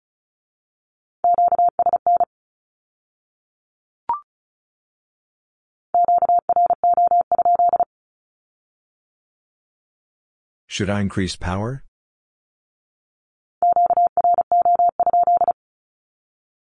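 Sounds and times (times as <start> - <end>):
Morse code Q-code beeps in a mid-pitched tone: 1.2 - 2.3, 6.0 - 7.9, 13.6 - 15.6
speech: 10.8 - 11.9.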